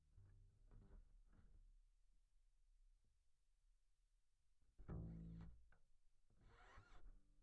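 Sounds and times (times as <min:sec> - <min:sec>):
bass DI: 0:00.1 - 0:01.6, 0:04.7 - 0:07.2.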